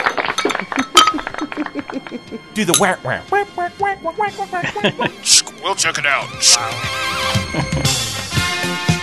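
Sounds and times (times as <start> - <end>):
beer glasses clinking in a toast: 0.0 - 3.1, 5.2 - 5.6
laughter: 0.4 - 2.6, 4.4 - 5.5, 7.3 - 8.2
voices murmuring: 1.6 - 6.9
speech: 1.8 - 8.9.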